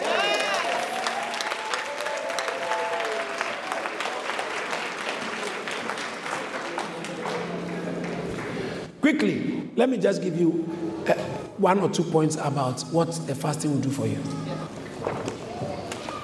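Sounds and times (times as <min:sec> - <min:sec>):
large crowd applauding: 0:00.0 - 0:08.9
people cheering: 0:00.0 - 0:08.9, 0:14.4 - 0:16.2
speech: 0:09.1 - 0:14.7.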